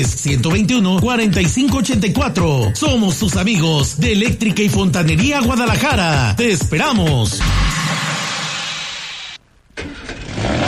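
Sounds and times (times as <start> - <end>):
speech: 0.0 - 7.6
car engine starting: 7.4 - 10.6.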